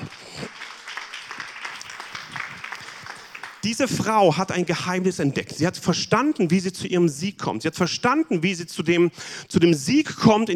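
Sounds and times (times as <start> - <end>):
audience applauding five volunteers: 0.0 - 4.1
speech: 3.6 - 10.5.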